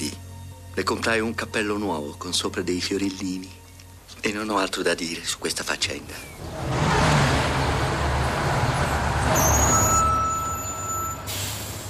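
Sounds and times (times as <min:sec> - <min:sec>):
speech: 0:00.8 - 0:03.6, 0:04.2 - 0:06.8
large city bus engine rumbling: 0:05.8 - 0:11.8
city bus air brakes hissing: 0:09.4 - 0:11.8.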